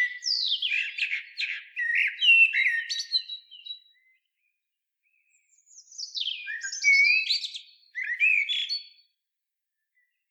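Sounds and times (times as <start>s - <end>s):
common blackbird Turdus merula singing: 0.0s - 4.2s, 5.3s - 9.0s.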